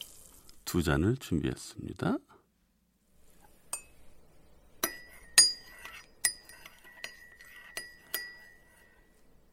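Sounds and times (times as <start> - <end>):
speech: 0.7 - 2.4
spoon clinking against cups while stirring instant coffee: 4.8 - 9.1.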